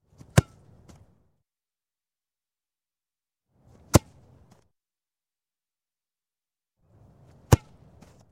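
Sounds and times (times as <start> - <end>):
football being caught: 7.4 - 7.8.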